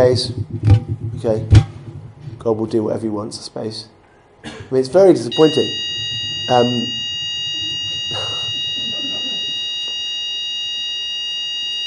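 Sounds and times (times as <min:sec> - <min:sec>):
speech: 0:00.0 - 0:01.7, 0:02.4 - 0:05.9, 0:06.5 - 0:07.0
hotel fire alarm test ringing with high-pitched electronic tone: 0:05.3 - 0:11.8.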